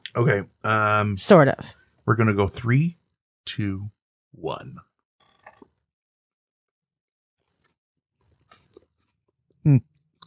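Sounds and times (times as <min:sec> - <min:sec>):
speech: 0:00.2 - 0:04.9, 0:09.6 - 0:09.9
chewing a crunchy peanut butter and onion sandwich: 0:05.3 - 0:05.7, 0:07.4 - 0:09.5.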